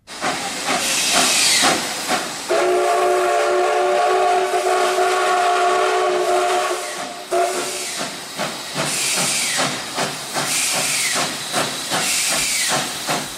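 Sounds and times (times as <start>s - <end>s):
steam locomotive hissing: 0.0s - 13.3s
steam locomotive whistle blast: 2.5s - 8.1s.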